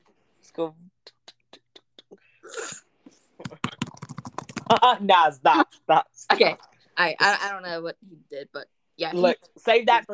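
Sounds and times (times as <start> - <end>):
speech: 0.5 - 1.0, 4.7 - 10.1
typing on a computer keyboard: 3.4 - 4.9.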